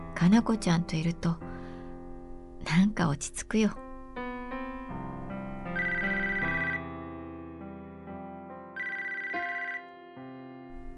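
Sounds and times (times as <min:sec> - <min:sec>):
speech: 0:00.2 - 0:01.5, 0:02.7 - 0:03.9
phone ringing with a bright electronic ringtone: 0:05.7 - 0:06.9, 0:08.8 - 0:09.9.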